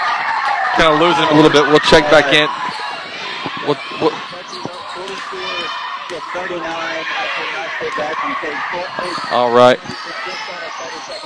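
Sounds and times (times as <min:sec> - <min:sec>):
crowd of basketball fans cheering in an arena: 0:00.0 - 0:11.2
excited voices of basketball fans overlapping: 0:00.0 - 0:11.2
speech: 0:00.8 - 0:02.6, 0:03.6 - 0:04.3, 0:06.3 - 0:10.2
sharp squeaks in a basketball arena: 0:02.5 - 0:05.9, 0:09.0 - 0:11.2.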